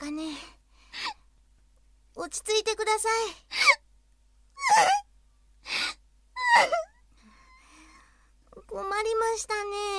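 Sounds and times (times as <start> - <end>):
speech: 2.2 - 3.8, 4.7 - 5.0, 9.4 - 9.9
woman sobbing with gasping inhales: 4.6 - 7.6.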